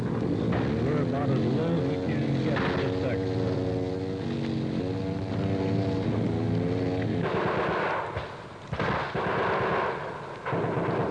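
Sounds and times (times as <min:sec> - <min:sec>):
steady droning engine: 0:00.0 - 0:11.0
heavy enemy gunfire at a jungle landing zone: 0:07.2 - 0:11.0.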